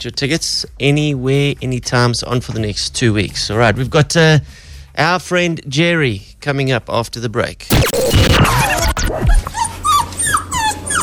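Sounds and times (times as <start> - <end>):
speech: 0.0 - 8.7
dog whimpering and yipping: 9.2 - 11.0.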